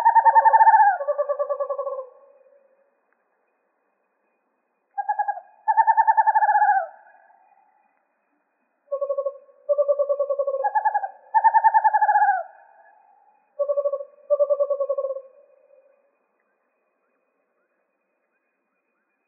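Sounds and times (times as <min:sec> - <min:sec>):
western screech owl trills in Arizona: 0:00.0 - 0:02.8, 0:05.0 - 0:07.8, 0:08.8 - 0:16.0.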